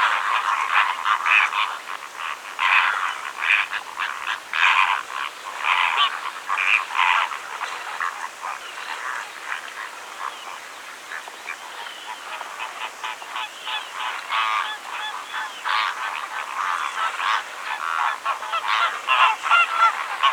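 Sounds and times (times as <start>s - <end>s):
greater flamingo flock honking and gabbling: 0.0s - 20.3s.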